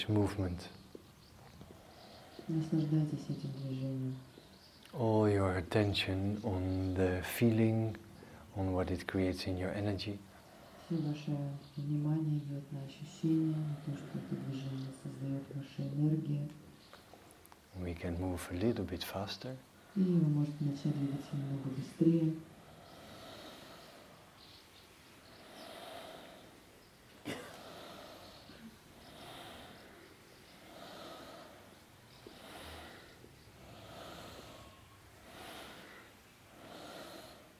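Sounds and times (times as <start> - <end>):
speech: 0.0 - 0.8, 2.5 - 10.3, 10.9 - 16.6, 17.8 - 22.5
slow full breathing through the nose during a guided breathing exercise: 1.2 - 2.7, 10.3 - 11.4, 22.5 - 37.5.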